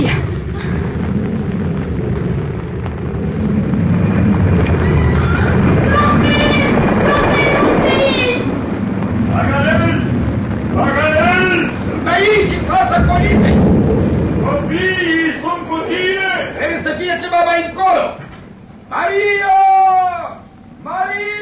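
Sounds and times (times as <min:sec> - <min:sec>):
earthquake rumbling: 0:00.0 - 0:20.8
people shouting: 0:04.8 - 0:08.6.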